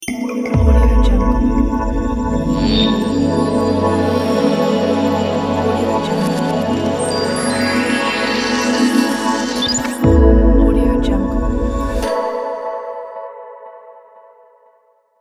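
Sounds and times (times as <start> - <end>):
atmospheric sound logo: 0.6 - 12.3.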